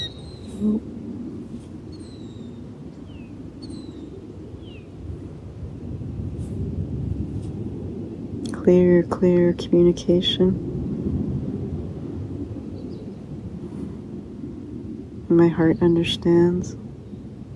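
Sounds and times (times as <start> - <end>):
bird giving short sharp descending warning calls in the morning: 0.0 - 0.9, 1.9 - 4.9
steady low outdoor rumble: 0.0 - 17.5
speech: 0.6 - 1.0, 8.7 - 10.7, 15.3 - 16.8.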